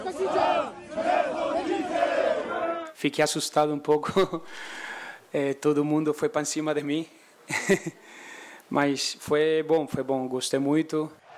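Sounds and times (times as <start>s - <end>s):
football fans chanting in unison at an airport: 0.0s - 3.0s, 11.2s - 11.3s
speech: 3.0s - 8.0s, 8.7s - 11.2s
laughter: 7.5s - 8.0s.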